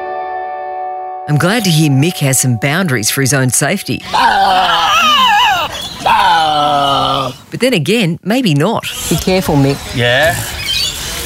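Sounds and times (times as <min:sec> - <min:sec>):
speech: 0:01.3 - 0:05.2, 0:07.3 - 0:10.5
captive Tasmanian devil greeting its keeper with wail and growl: 0:04.1 - 0:07.4.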